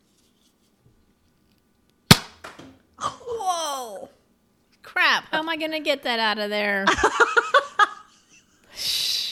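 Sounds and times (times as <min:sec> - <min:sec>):
toy Nerf rocket launching from its launcher with a sharp pop: 0:02.1 - 0:02.6
toy Nerf rocket landing thumps in a kitchen: 0:02.1 - 0:02.8
speech: 0:05.4 - 0:07.4
laughter: 0:06.9 - 0:08.4.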